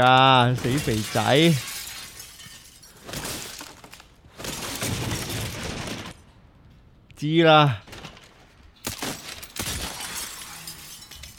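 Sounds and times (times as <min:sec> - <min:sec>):
speech: 0:00.0 - 0:01.8, 0:07.2 - 0:07.8
tinkling glass debris: 0:00.0 - 0:03.6, 0:09.2 - 0:11.3
glass shattering in a video game: 0:00.0 - 0:05.9, 0:08.8 - 0:11.3.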